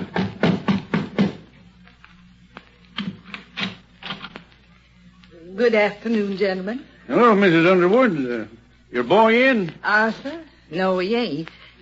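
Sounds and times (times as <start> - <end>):
doctor knocking on the wooden front door of a house: 0.0 - 1.4
speech: 5.6 - 11.6.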